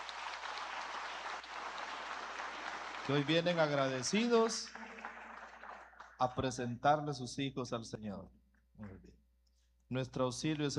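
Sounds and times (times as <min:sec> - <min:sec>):
congregation applauding in church: 0:00.0 - 0:06.6
speech: 0:03.1 - 0:04.9, 0:06.2 - 0:09.2, 0:09.9 - 0:10.7.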